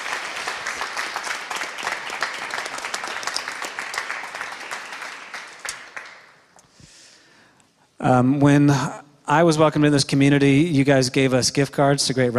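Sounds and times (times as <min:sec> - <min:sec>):
audience applauding: 0:00.0 - 0:06.5
speech: 0:08.0 - 0:12.3.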